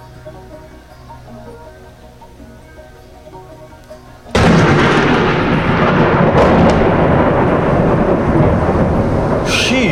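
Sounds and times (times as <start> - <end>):
loud thunder crack from lightning striking a grass field by the Maas: 4.3 - 9.9.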